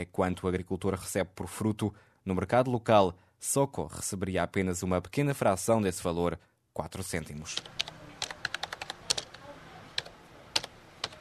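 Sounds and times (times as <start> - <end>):
speech: 0.0 - 7.9
typing on a computer keyboard: 7.5 - 11.1.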